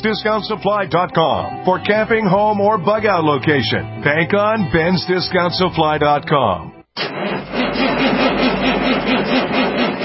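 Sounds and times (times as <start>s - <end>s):
speech: 0.0s - 7.2s
diesel engine hard starting, cranking and chugging: 6.9s - 10.0s.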